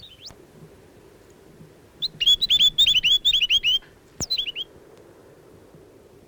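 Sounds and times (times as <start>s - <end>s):
Chatham Island tomtit song: 0.0s - 0.3s, 2.0s - 4.7s.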